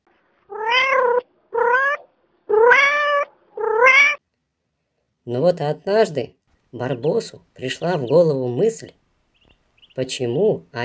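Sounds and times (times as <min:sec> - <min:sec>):
cat meowing: 0:00.5 - 0:04.2
speech: 0:05.3 - 0:09.0, 0:10.0 - 0:10.8.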